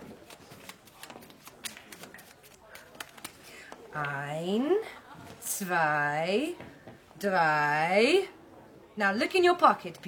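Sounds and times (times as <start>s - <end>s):
deck of playing cards being shuffled: 0.0s - 3.5s
speech: 4.0s - 5.0s, 5.6s - 8.4s, 9.0s - 10.0s.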